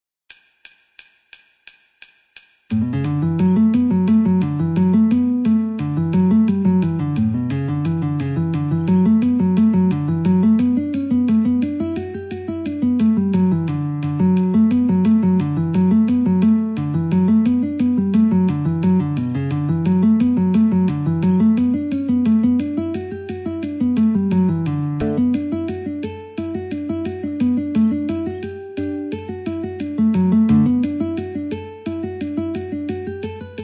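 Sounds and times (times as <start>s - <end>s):
metronome at 88: 2.7s - 22.7s, 23.7s - 26.8s, 29.2s - 31.0s
guitar playing in D: 2.8s - 33.6s.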